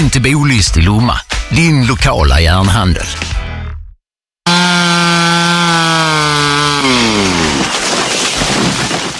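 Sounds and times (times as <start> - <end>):
speech: 0.0 - 3.4
chainsaw cutting down trees: 4.5 - 8.7.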